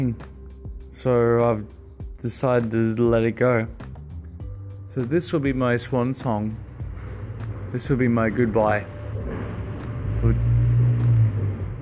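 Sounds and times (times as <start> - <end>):
speech: 0.0 - 0.3, 0.9 - 3.8, 5.0 - 6.7, 7.7 - 9.4, 10.2 - 10.5
heavy truck driving past loudly: 6.6 - 11.8.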